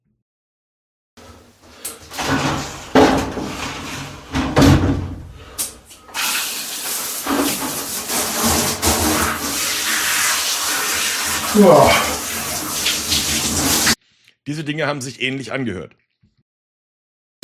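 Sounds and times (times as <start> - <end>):
shower water running: 1.2 - 4.5, 5.4 - 14.0
bumps and knocks: 2.2 - 5.3
speech: 11.6 - 12.1, 14.5 - 16.0.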